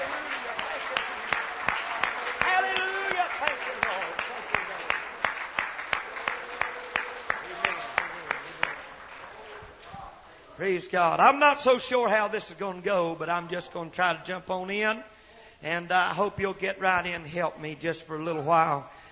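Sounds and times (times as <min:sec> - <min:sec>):
audience clapping hands in praise: 0:00.0 - 0:10.3
speech: 0:10.6 - 0:19.0.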